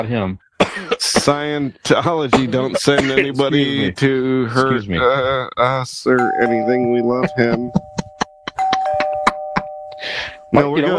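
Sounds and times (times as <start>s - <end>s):
speech: 0.0s - 7.9s, 10.5s - 10.9s
laughter: 0.7s - 10.9s
sustained doorbell chime tone: 6.1s - 10.9s
doorbell with bright metallic dings: 6.2s - 10.9s.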